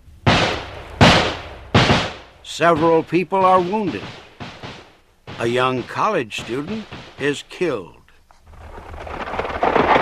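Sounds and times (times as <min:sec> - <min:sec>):
gunshot bursts from several guns in a street: 0:00.2 - 0:07.9
speech: 0:02.5 - 0:04.2, 0:05.4 - 0:08.0.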